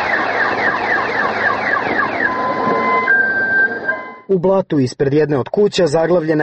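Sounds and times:
car alarm blaring from an overturned car in mud: 0.0s - 4.4s
noisy outdoor background: 0.0s - 6.4s
speech: 4.3s - 6.4s.

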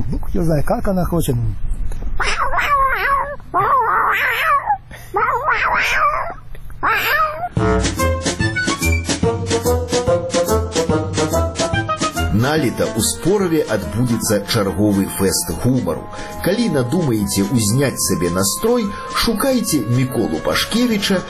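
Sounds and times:
speech: 0.4s - 2.5s, 12.4s - 21.2s
human voice mimicking a female cat in heat caterwauling: 2.2s - 7.5s
upbeat music with a steady beat: 7.6s - 21.2s.

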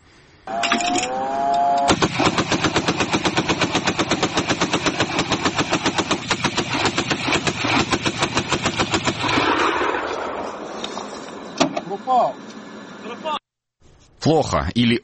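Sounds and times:
outdoor noise: 0.0s - 15.0s
anti-aircraft cannon firing at drones at night: 1.9s - 10.8s
scattered bangs: 1.9s - 10.8s
speech: 14.3s - 15.0s.

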